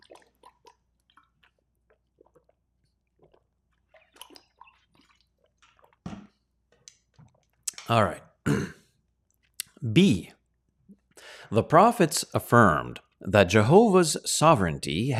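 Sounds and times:
gulp: 0.0s - 6.4s, 8.5s - 8.9s
person drinking water: 0.0s - 9.8s, 10.4s - 11.4s
speech: 7.9s - 8.7s, 10.0s - 10.3s, 11.5s - 15.1s.

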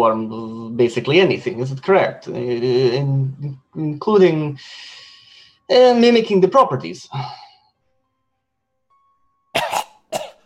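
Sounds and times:
speech: 0.0s - 5.0s, 5.7s - 7.4s
voice imitating a creature coughing up ash: 9.6s - 10.4s.

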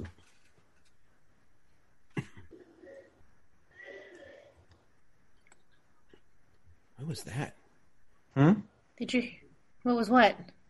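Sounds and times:
quiet hum: 0.0s - 10.6s
person coughing outside on the street: 2.1s - 2.7s
speech: 7.1s - 7.6s, 8.4s - 10.6s.

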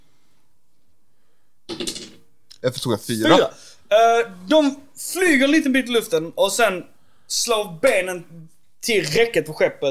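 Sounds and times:
six-sided die rolling across a hard surface: 1.7s - 2.2s
speech: 2.6s - 9.9s.

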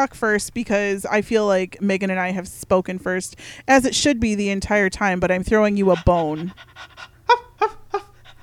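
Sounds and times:
speech: 0.0s - 7.8s
low hum: 0.0s - 8.4s
dog panting: 5.3s - 8.4s.

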